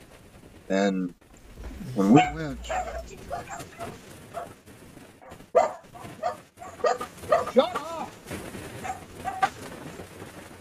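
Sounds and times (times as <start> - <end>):
speech: 0.7 - 1.2, 2.0 - 4.6
voice sounds: 1.4 - 4.0
dog barking: 1.9 - 4.6, 5.2 - 7.7, 8.8 - 9.6.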